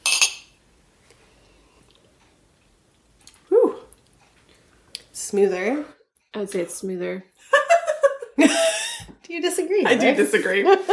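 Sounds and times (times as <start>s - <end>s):
glasses clinking in a toast: 0.0s - 0.5s
speech: 5.3s - 7.6s, 8.4s - 10.9s
laughter: 10.0s - 10.9s.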